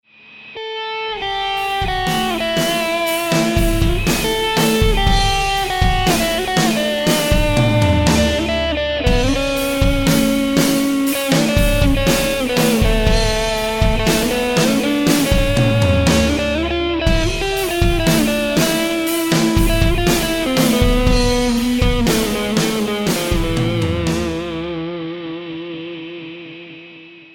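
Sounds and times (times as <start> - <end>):
guitar improvisation: 0.6 - 27.3.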